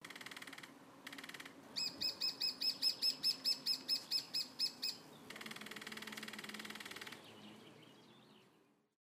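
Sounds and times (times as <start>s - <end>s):
Dendrocopos major calling: 0.0s - 8.2s.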